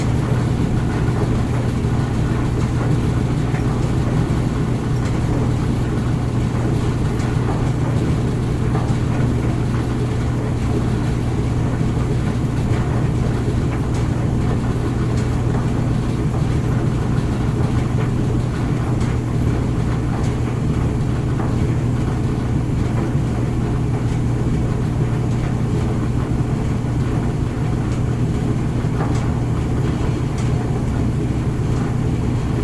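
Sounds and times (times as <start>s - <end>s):
clothes dryer humming: 0.0s - 32.6s.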